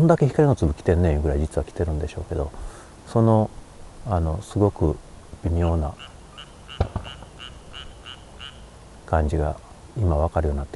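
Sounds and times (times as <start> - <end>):
speech: 0.0 - 6.1, 9.1 - 10.7
frog croaking: 5.4 - 9.1
low thumps: 6.8 - 7.4.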